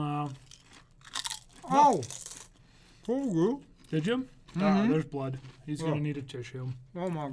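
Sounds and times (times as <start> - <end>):
speech: 0.0 - 0.5, 1.7 - 2.3, 3.1 - 7.3
folded double potato chip being bitten: 0.1 - 4.0.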